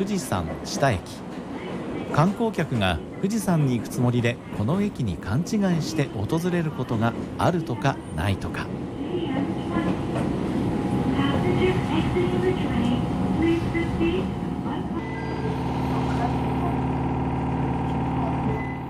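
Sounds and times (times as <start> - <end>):
speech: 0.0 - 1.4, 2.1 - 9.5, 11.6 - 14.4
train pulling away from a platform, motor whine and rumble: 9.0 - 18.8.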